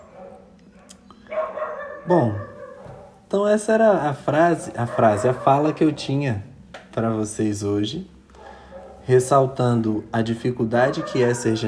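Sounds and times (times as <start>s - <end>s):
dogs barking: 0.0s - 3.3s, 4.4s - 6.4s, 8.2s - 11.6s
speech: 2.1s - 2.5s, 3.3s - 8.1s, 9.1s - 11.6s.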